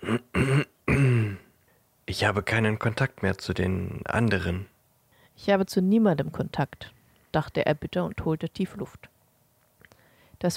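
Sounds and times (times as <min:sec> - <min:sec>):
man clearing throat: 0:00.0 - 0:01.6
speech: 0:02.1 - 0:04.7, 0:05.4 - 0:09.1.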